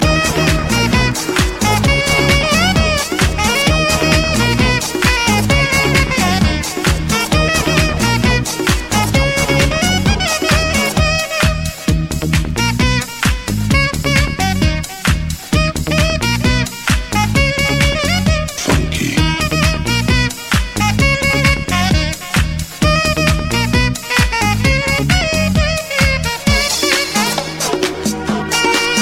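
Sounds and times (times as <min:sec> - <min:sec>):
trumpet playing instrumental: 0:00.0 - 0:29.0.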